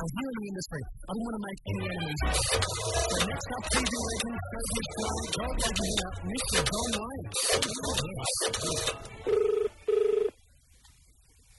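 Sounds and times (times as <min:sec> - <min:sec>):
speech: 0:00.0 - 0:09.4
telephone ringing with a warbling electronic trill: 0:08.5 - 0:10.4.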